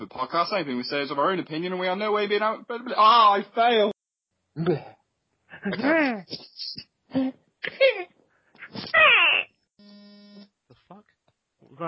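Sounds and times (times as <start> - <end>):
speech: 0.0 - 4.0, 4.6 - 5.0, 5.6 - 8.0
mobile phone vibrating: 9.8 - 10.5.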